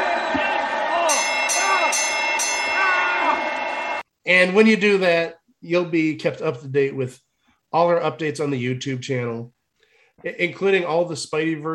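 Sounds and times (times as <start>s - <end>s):
bright bell ringing: 1.0s - 4.0s
speech: 4.2s - 9.6s, 10.2s - 11.7s.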